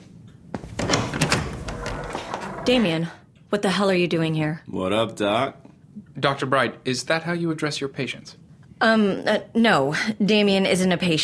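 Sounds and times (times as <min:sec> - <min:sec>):
door rattling and scraping as it swings open: 0:00.7 - 0:03.0
speech: 0:02.6 - 0:05.6, 0:06.2 - 0:11.2.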